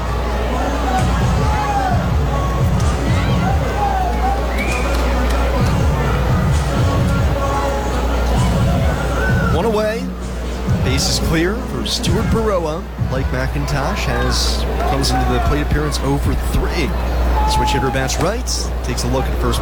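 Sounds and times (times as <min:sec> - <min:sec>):
people shouting in a stadium crowd: 0:00.0 - 0:09.8, 0:13.4 - 0:18.4
large baseball stadium crowd murmuring: 0:00.0 - 0:19.6
speech: 0:11.9 - 0:19.6.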